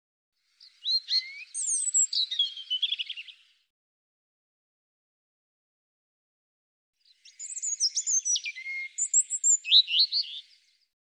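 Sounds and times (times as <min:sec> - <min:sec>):
European robin singing: 0:00.4 - 0:03.6, 0:07.0 - 0:10.9.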